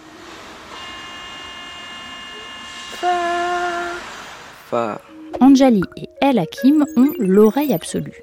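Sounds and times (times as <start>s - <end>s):
metro train electric motors whining: 0.0s - 4.0s
speech: 3.0s - 3.2s, 4.7s - 8.2s.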